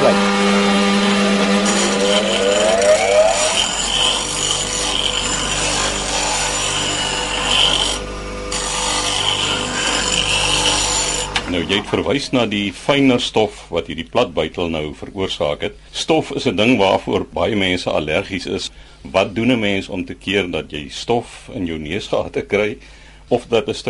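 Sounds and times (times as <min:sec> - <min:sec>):
grinding wheel motor whirring: 0:00.0 - 0:11.9
flat chisel grinding against a spinning grinding wheel: 0:00.7 - 0:11.4
speech: 0:11.9 - 0:23.8.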